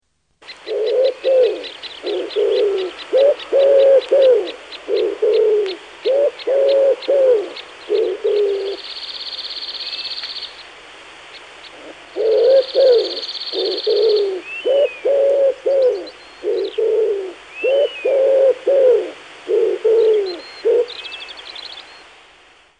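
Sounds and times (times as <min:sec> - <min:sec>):
wood pigeon: 0:00.5 - 0:08.8, 0:11.7 - 0:21.0.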